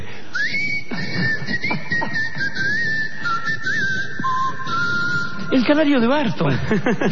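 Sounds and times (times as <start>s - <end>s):
constant noisy background: 0.0s - 7.1s
person whistling a short wavering melody: 0.3s - 5.8s
speech: 5.5s - 7.1s
laughter: 6.4s - 7.1s.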